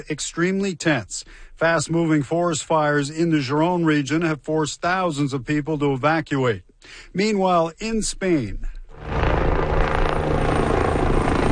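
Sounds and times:
speech: 0.0 - 9.1
helicopter rotor and engine drone while waterbombing forest fire flames near El Tiemblo, Spain: 8.9 - 11.5.

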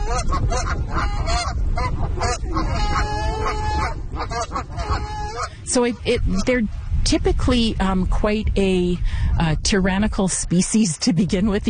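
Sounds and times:
geese honking: 0.0 - 6.7
speech: 0.2 - 1.2, 5.7 - 11.6.

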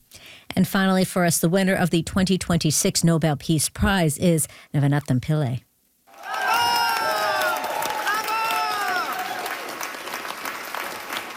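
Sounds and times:
speech: 0.6 - 5.7
excited voices and cheers of audience: 6.1 - 10.2
large audience clapping: 6.1 - 11.3.

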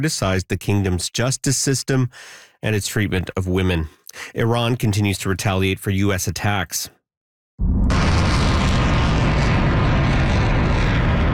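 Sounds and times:
speech: 0.0 - 7.0
missiles being launched toward military bases: 7.6 - 11.3.

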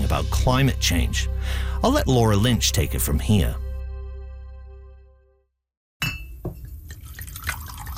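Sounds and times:
speech: 0.1 - 3.6
clear glassy ring: 6.0 - 6.7
glass clinks: 6.0 - 6.7
whiskey pouring into a glass: 6.7 - 7.9.

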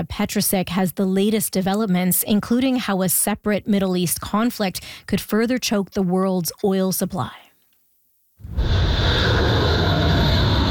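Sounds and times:
speech: 0.0 - 7.4
jet engine roaring at full power taking off from aircraft carrier: 8.5 - 10.7.

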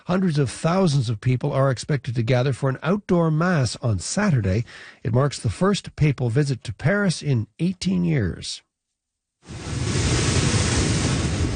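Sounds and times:
speech: 0.0 - 8.7
hurricane storm-driven surf crashing: 9.4 - 11.5
hurricane wind: 9.4 - 11.5.

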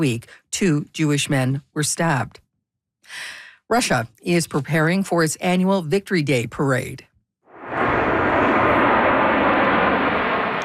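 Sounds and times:
speech: 0.0 - 2.4, 3.1 - 7.1
aircraft engines roaring as planes fly overhead: 7.6 - 10.6.

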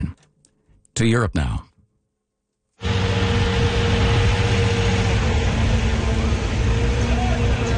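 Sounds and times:
speech: 1.0 - 1.7
large municipal water truck engine running in Prague: 2.8 - 7.7.

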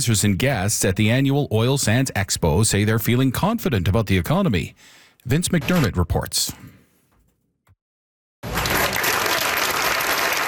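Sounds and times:
speech: 0.0 - 6.8
crowd of hundreds applauding at a stage: 8.4 - 10.4.

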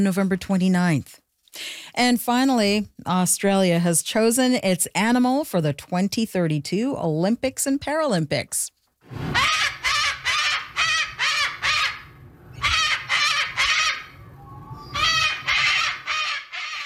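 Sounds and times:
speech: 0.0 - 9.7
harsh raspy cockatoo screeches: 9.2 - 14.2, 14.8 - 16.8.

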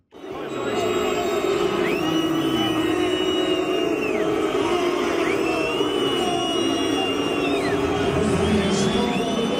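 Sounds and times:
stadium football fans booing at hydration breaks: 0.0 - 9.5.

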